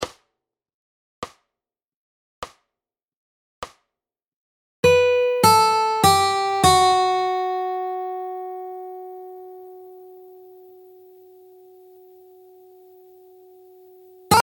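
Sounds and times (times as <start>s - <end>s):
fingerstyle guitar lick: 4.8s - 13.6s.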